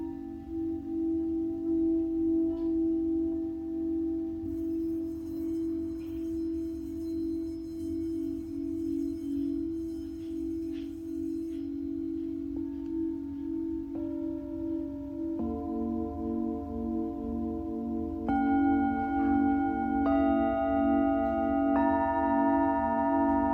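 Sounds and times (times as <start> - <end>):
Tibetan singing bowl humming with a low drone: 0.0 - 23.5
bright singing bowl ringing tones: 4.4 - 23.5.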